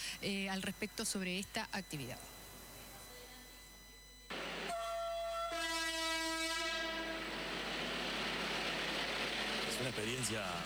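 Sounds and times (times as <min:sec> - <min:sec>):
speech: 0:00.1 - 0:02.4, 0:09.8 - 0:10.6
train horn long sustained blast: 0:04.4 - 0:08.6.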